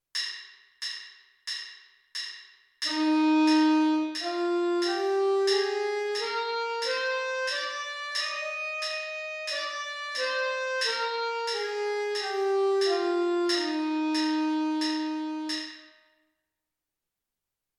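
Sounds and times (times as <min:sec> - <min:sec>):
alto sax playing a C major scale in the upper octave: 0:02.9 - 0:15.9.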